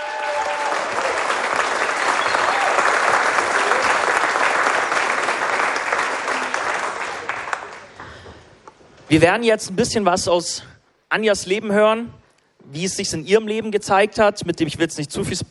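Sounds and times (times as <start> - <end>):
audience applause at a live event: 0.0 - 8.3
speech: 9.1 - 15.5.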